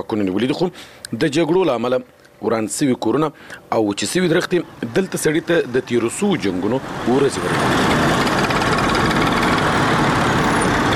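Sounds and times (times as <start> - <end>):
speech: 0.0 - 8.0
old motorcycle engine running while carrying two riders: 7.4 - 10.9.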